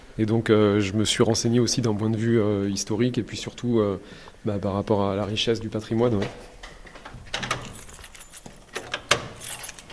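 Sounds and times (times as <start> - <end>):
speech: 0.2 - 6.6
door opening: 6.1 - 9.9
metallic clicks and rattles of a door lock being worked: 7.0 - 9.9.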